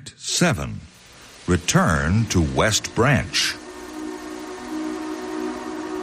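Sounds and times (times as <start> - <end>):
speech: 0.4 - 3.6
train approaching: 1.8 - 6.0.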